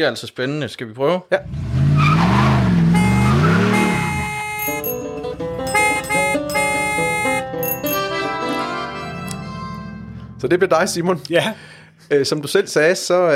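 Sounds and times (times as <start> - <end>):
speech: 0.0 - 1.7, 10.4 - 13.3
swooping car engine rev in a radio traffic jingle: 1.4 - 4.2, 9.3 - 12.1
bright chiming musical sting with bell-like tones: 4.6 - 8.5.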